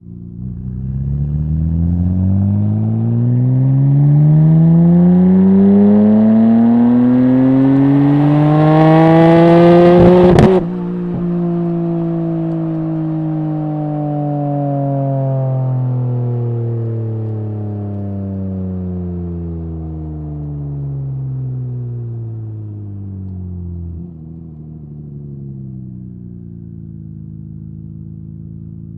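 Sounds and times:
Nissan R33 Skyline exhaust on ramps during drive: 0.1 - 16.5.

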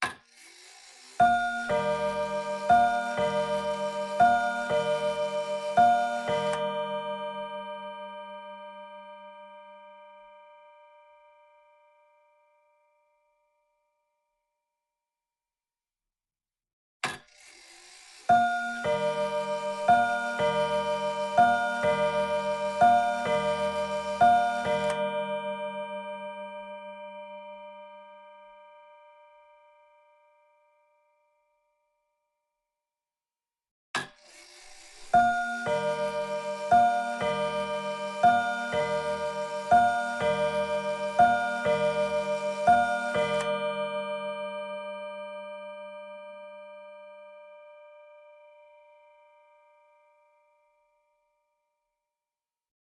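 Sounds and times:
old 1920 wall clock chimes ringing: 0.9 - 12.8, 18.0 - 31.0, 34.4 - 51.0.

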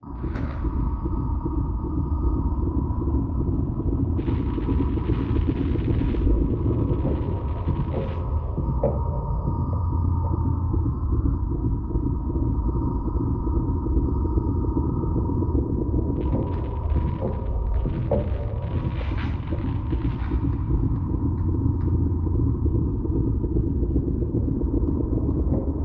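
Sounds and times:
abstract ambiences mix: 0.0 - 25.8.

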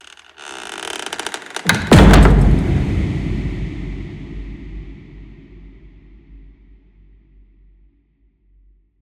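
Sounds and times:
designed scary old wooden door closing impact: 0.1 - 2.9.

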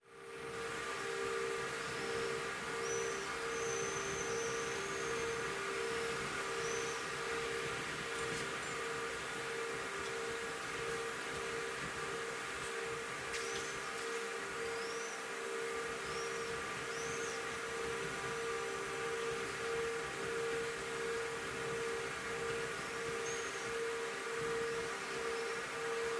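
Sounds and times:
air conditioning system: 0.0 - 26.1
early morning outdoor cityscape ambience: 0.1 - 26.1.

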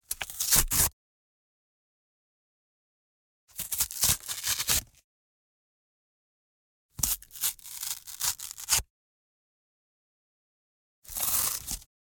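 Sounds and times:
cardboard ripping and tearing: 0.2 - 0.9, 3.6 - 4.8, 7.1 - 8.8, 11.1 - 11.9.

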